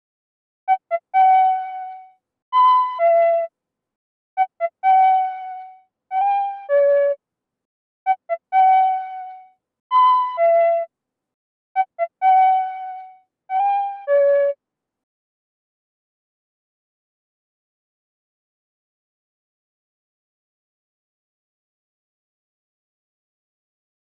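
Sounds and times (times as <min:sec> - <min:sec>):
flute playing in B minor: 0:02.6 - 0:03.5, 0:04.4 - 0:07.2, 0:08.1 - 0:10.9, 0:11.8 - 0:14.6.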